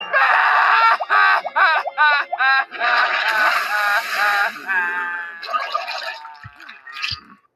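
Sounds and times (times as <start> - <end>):
laughter: 0.0 - 5.5
ape crying: 0.0 - 6.6.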